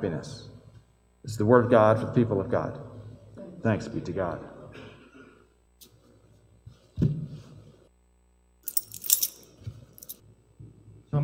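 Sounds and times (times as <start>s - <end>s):
speech: 0.0s - 0.5s, 1.2s - 2.9s, 3.6s - 4.5s
ring of keys jangling: 8.7s - 10.2s.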